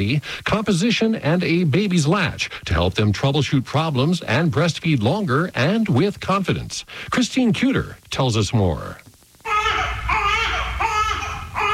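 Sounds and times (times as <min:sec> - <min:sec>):
speech: 0:00.0 - 0:09.0
newborn baby girl crying: 0:09.4 - 0:11.7.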